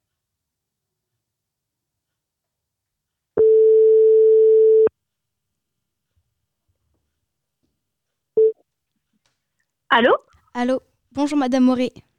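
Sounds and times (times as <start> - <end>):
telephone ringback tone as a call rings out to a school teacher: 3.4 - 4.9
speech: 9.9 - 12.1.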